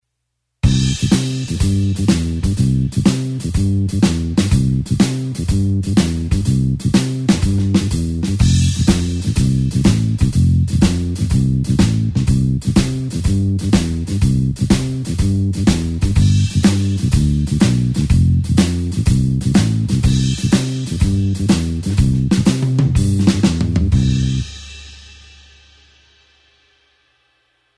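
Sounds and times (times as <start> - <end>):
blues shuffle bassline in C: 0.6 - 24.8.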